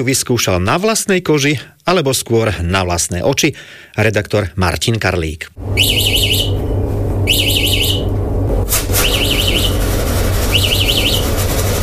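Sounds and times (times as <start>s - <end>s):
speech: 0.0s - 6.4s
steady low hum: 5.2s - 11.8s
security alarm electronic warbling: 5.6s - 11.4s.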